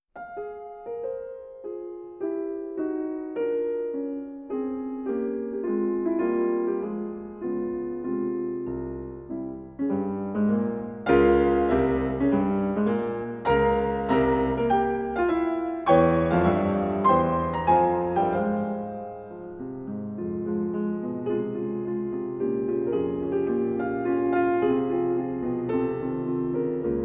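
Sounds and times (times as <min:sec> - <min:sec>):
solo piano concerto piece: 0:00.0 - 0:27.0.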